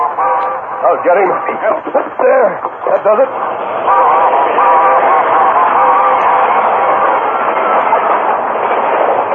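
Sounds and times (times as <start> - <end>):
steam train rushing past: 0.0 - 9.3
speech: 0.8 - 4.6.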